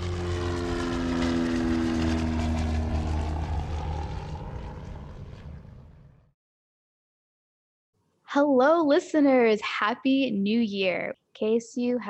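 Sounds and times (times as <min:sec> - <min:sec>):
propeller airplane engine drone taking off: 0:00.0 - 0:06.3
speech: 0:08.4 - 0:12.0.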